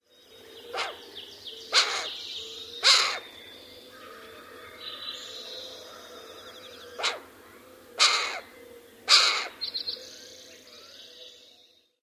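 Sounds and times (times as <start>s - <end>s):
female Cooper's Hawk harsh notes: 1.8s - 2.1s, 2.8s - 3.2s, 7.0s - 7.2s, 8.0s - 8.5s, 9.1s - 9.6s.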